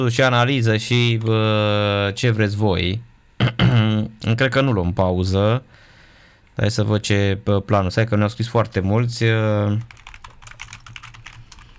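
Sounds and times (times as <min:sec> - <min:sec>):
speech: 0:00.0 - 0:05.8, 0:06.6 - 0:10.0
quick typing on a computer keyboard: 0:09.8 - 0:11.7.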